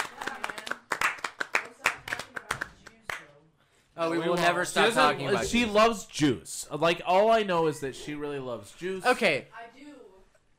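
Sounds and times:
small group clapping: 0.0 - 3.4
speech: 4.0 - 9.6.

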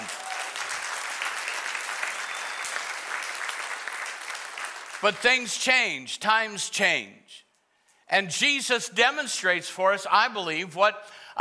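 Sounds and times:
large church audience clapping loudly: 0.0 - 5.7
speech: 5.0 - 7.4, 8.1 - 11.3.

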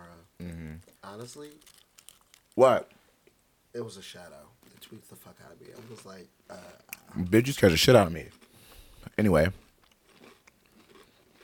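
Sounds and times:
people chewing a crisp snack: 0.4 - 2.6, 5.6 - 7.2, 8.3 - 11.4
speech: 1.1 - 1.8, 2.6 - 3.0, 3.7 - 8.4, 9.1 - 9.6.

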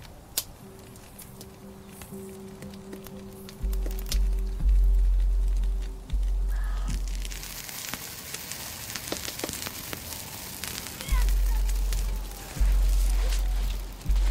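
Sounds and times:
mugwort branch crackling in a fire: 0.0 - 14.2
deep low drone: 0.6 - 7.6, 11.1 - 14.2.

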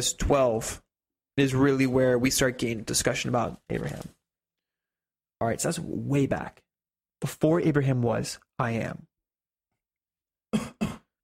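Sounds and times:
speech: 0.0 - 0.8, 1.4 - 4.2, 5.4 - 6.6, 7.2 - 9.1
man coughing: 10.5 - 11.2.

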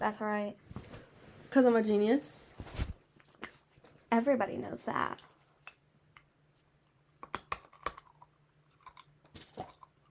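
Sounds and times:
speech: 0.0 - 0.8, 1.5 - 2.8, 4.1 - 5.3
faint steady hum: 0.0 - 10.0
munching and crunching on a push pop candy: 7.2 - 10.0.

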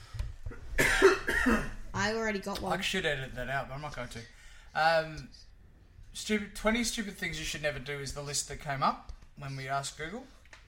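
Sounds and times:
person coughing: 0.5 - 1.8
speech: 1.4 - 5.5, 6.2 - 10.4.

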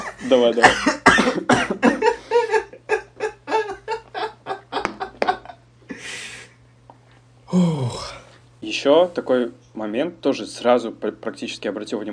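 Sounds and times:
person coughing: 0.0 - 2.2
speech: 0.2 - 1.9, 8.7 - 12.1
laughter: 1.4 - 6.2.

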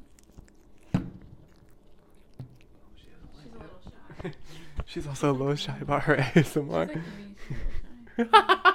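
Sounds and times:
cat chewing wet food: 0.0 - 5.0
speech: 4.2 - 8.6.

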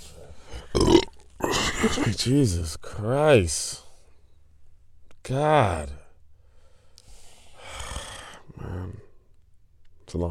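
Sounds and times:
short belching sound: 0.7 - 2.0
loud burp: 0.7 - 2.1
speech: 1.8 - 3.8, 5.3 - 6.0, 10.1 - 10.2.

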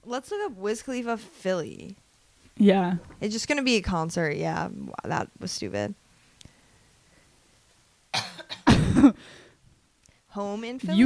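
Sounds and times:
speech: 0.0 - 2.0, 2.6 - 6.0, 10.4 - 11.0
throat clearing rasp: 8.2 - 9.2
person coughing: 8.2 - 9.4.

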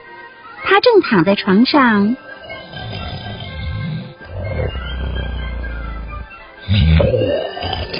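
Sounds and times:
speech: 0.7 - 2.2
loud rumbling snoring: 2.3 - 7.9.

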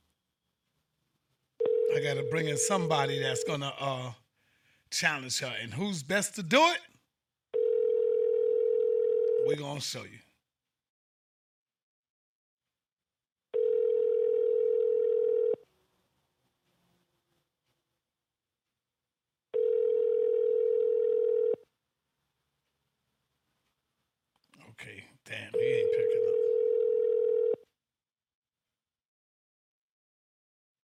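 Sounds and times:
unanswered telephone call ringback tone: 1.6 - 3.6, 7.6 - 9.5, 13.6 - 15.6, 19.6 - 21.6, 25.6 - 27.6
speech: 2.0 - 4.2, 4.9 - 6.9, 9.5 - 10.3, 24.8 - 26.0.

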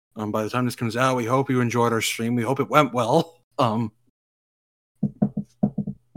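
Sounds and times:
speech: 0.2 - 4.0
knocks on wood: 5.0 - 6.1.

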